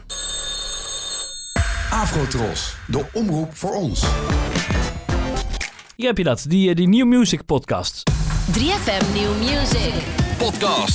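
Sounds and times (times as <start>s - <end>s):
telephone bell ringing: 0.0s - 2.2s
speech: 1.9s - 4.5s, 6.0s - 10.9s.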